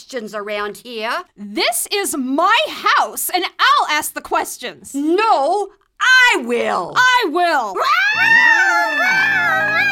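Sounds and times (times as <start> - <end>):
speech: 0.1 - 9.9
cats yowling loudly: 7.8 - 9.9.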